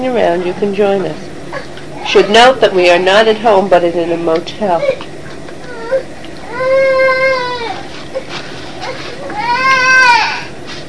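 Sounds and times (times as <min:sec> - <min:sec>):
speech: 0:00.0 - 0:01.3, 0:02.1 - 0:05.0
young child wailing in a temper tantrum in a motel: 0:05.7 - 0:07.9, 0:08.8 - 0:10.6.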